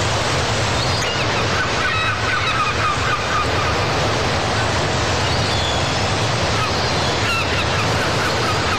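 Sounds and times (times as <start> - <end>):
breaking sea waves: 0.0 - 8.7
seagulls calling: 0.8 - 4.4, 5.1 - 8.7.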